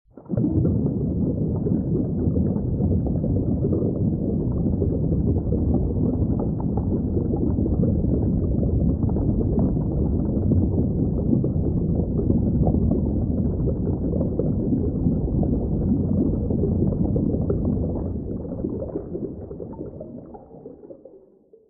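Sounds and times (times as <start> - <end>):
underwater ambience: 0.1 - 21.6.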